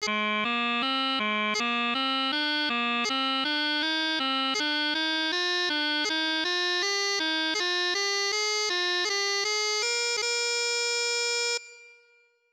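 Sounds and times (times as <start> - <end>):
pipes playing a scale exercise: 0.0 - 11.9.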